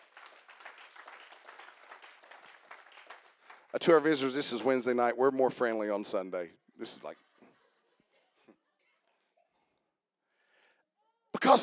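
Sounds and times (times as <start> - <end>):
audience applause from a large group: 0.0 - 4.2
speech: 3.7 - 7.2.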